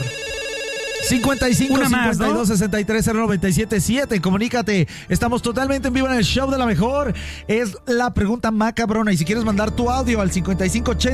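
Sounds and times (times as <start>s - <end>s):
electronic ringtone of a telephone signalling an incoming call: 0.0s - 2.7s
speech: 1.0s - 11.1s.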